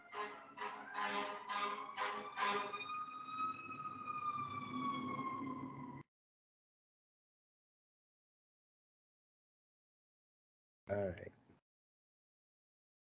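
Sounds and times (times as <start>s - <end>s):
fire engine siren passing: 0.0s - 6.0s.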